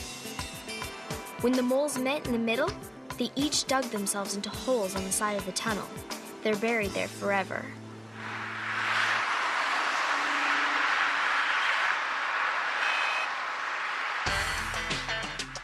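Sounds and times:
speech: 1.4 - 7.8
dense city traffic with engine rumble: 7.8 - 15.6
truck reversing: 10.3 - 14.7.

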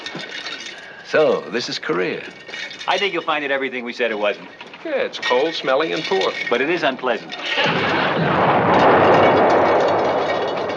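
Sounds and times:
speech: 1.1 - 8.8
artillery fire in wartime Korea: 7.6 - 10.7.

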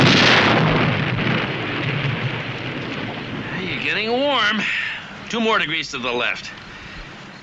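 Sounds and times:
cannon firing: 0.0 - 4.5
speech: 4.0 - 6.6.

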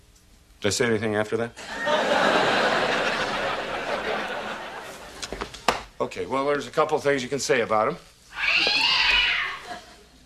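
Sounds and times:
speech: 0.6 - 2.4, 6.1 - 8.7
laughter: 1.6 - 5.4, 9.4 - 10.2
cat meowing: 8.3 - 9.8.

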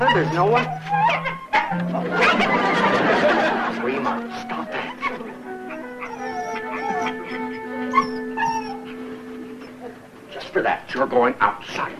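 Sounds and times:
dog whimpering and yipping: 0.0 - 2.7, 4.8 - 10.1
speech: 0.0 - 2.9, 10.6 - 11.9
laughter: 1.7 - 10.1.

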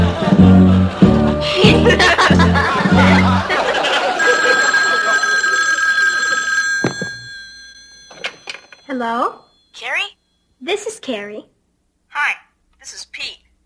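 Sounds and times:
laughter: 0.0 - 6.6
telephone ringing on an outgoing call: 3.4 - 10.5
speech: 10.7 - 11.5, 12.1 - 13.4.

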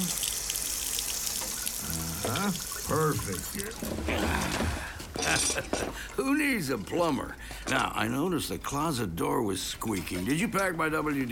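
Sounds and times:
water running from a faucet during a home plumbing fix: 0.0 - 4.1
speech: 2.2 - 11.3.

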